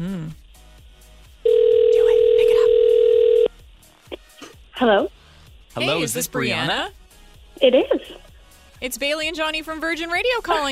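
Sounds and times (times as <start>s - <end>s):
ringback tone on an outgoing phone call: 1.5s - 3.5s
voice answering on the phone line: 1.7s - 3.3s, 5.8s - 6.6s
speech: 4.8s - 5.2s, 5.8s - 7.0s, 7.6s - 10.7s.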